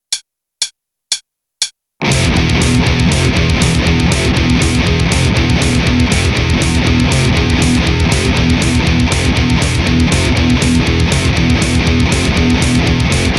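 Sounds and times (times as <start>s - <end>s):
heavy bass: 2.0s - 13.3s.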